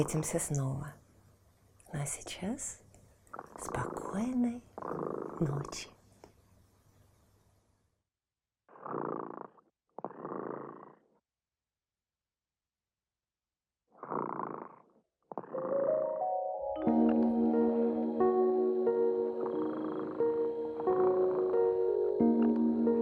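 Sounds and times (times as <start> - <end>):
speech: 0.0 - 1.0, 1.9 - 2.8, 3.4 - 6.0
sleeping cat purring: 3.3 - 6.0, 8.7 - 11.2, 14.0 - 16.2, 17.0 - 23.0.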